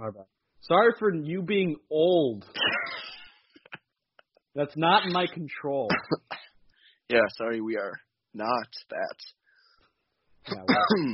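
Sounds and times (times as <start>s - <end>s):
speech: 0.0s - 3.0s, 4.6s - 6.4s, 7.1s - 9.4s, 10.4s - 11.1s
person clearing throat: 5.9s - 6.5s, 10.5s - 11.1s.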